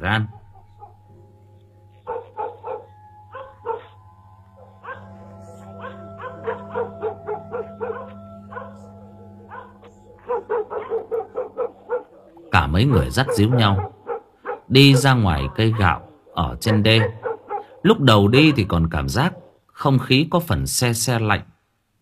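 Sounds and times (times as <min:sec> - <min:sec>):
speech: 0:00.0 - 0:00.4, 0:12.8 - 0:13.9, 0:14.7 - 0:17.2, 0:17.8 - 0:21.5
low hum: 0:00.0 - 0:14.8
village dogs barking and yelping at night: 0:00.3 - 0:01.1, 0:01.9 - 0:19.6.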